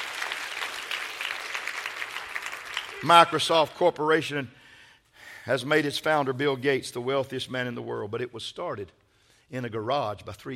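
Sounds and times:
audience clapping hands: 0.0 - 3.5
speech: 3.0 - 4.6, 5.5 - 10.5.

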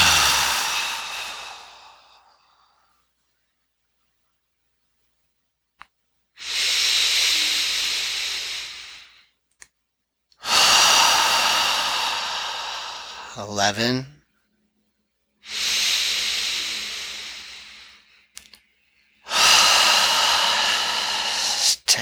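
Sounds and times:
slow breathing during a guided practice: 0.0 - 3.2, 6.4 - 9.4, 10.4 - 14.0, 15.4 - 21.9
speech: 13.4 - 14.1
faint clicks: 18.3 - 18.7.

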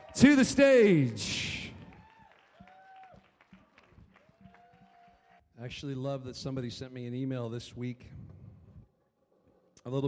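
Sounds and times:
crowd cheering with whoops and shouted voices: 0.0 - 3.4, 4.1 - 5.4
crowd applauding: 0.0 - 5.4
speech: 0.2 - 1.4, 5.6 - 8.3, 9.8 - 10.0.

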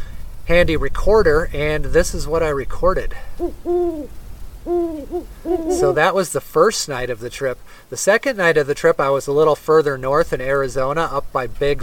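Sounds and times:
speech: 0.5 - 11.8
owl hooting at night: 3.2 - 6.2.

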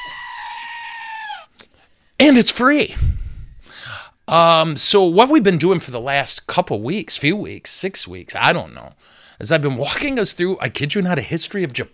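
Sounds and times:
goat scream, strained high-pitched bleat: 0.0 - 1.5
speech: 2.2 - 3.1, 4.3 - 11.9.

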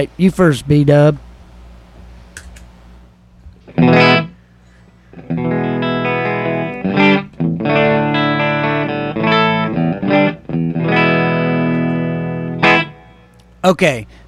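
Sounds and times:
speech: 0.0 - 1.2, 13.6 - 14.2
clean dry electric guitar strumming chords and ringing notes: 3.6 - 4.4, 5.1 - 13.6.

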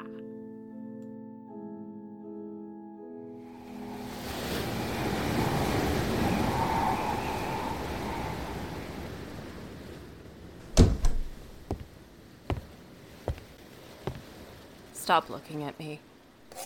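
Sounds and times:
ocean waves: 3.4 - 16.5
sharp irregular knocks or thuds: 10.7 - 11.8
speech: 15.1 - 16.1.

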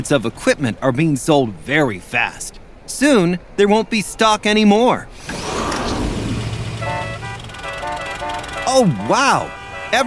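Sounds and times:
speech: 0.0 - 5.4, 8.7 - 10.0
idling cars in a massive traffic jam outside a mall: 5.1 - 10.0
car horns honking in a traffic jam: 6.3 - 10.0.

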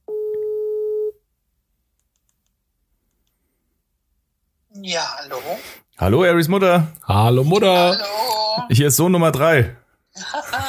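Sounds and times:
telephone ringback tone while placing a call: 0.1 - 1.1
speech: 4.8 - 10.6
laughter: 10.2 - 10.6.

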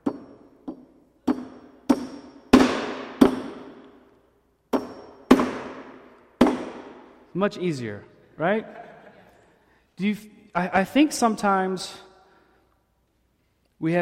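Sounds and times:
hammer driving a nail into wood: 0.0 - 4.0, 4.7 - 7.1
speech: 7.4 - 8.8, 10.0 - 12.1, 13.8 - 14.0.

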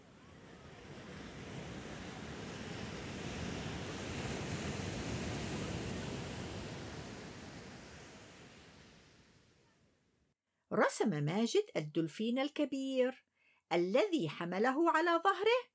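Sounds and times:
ocean waves: 0.0 - 9.8
wind: 0.0 - 10.0
speech: 10.7 - 15.7.

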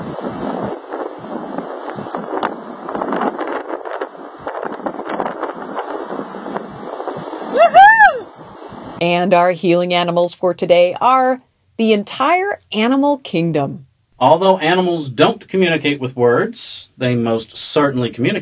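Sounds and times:
wind noise from riding in a convertible car: 0.0 - 9.4
speech: 9.0 - 18.4.

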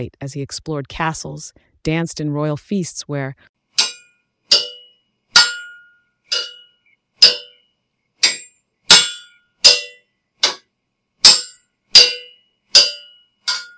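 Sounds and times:
speech: 0.0 - 3.5
clanging metal of a jousting tournament: 3.8 - 7.6, 8.2 - 13.7.

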